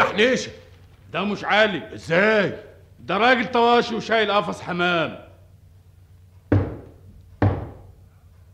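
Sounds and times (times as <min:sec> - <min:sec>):
speech: 0:00.2 - 0:05.3
loud knocking on a door: 0:06.5 - 0:08.0.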